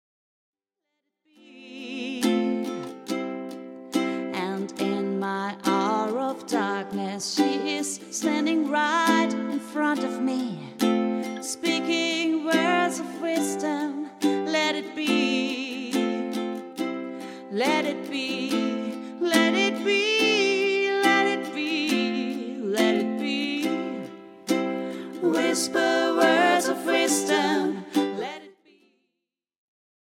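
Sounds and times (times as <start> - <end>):
person singing: 1.3 - 3.2, 3.9 - 28.8
ukulele: 1.4 - 28.8.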